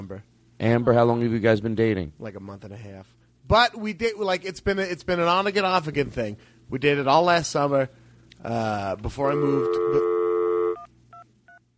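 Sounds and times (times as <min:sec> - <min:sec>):
speech: 0:00.1 - 0:10.1
steady phone tone: 0:09.2 - 0:11.6.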